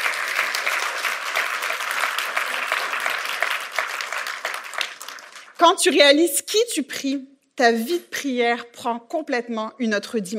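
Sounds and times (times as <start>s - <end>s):
large crowd at a morning worship gathering clapping: 0.0s - 5.6s
speech: 5.6s - 10.3s.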